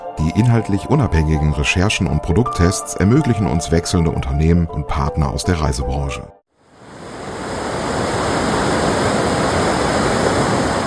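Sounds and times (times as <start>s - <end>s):
speech: 0.2s - 6.4s
rushing splashing water: 6.7s - 10.8s.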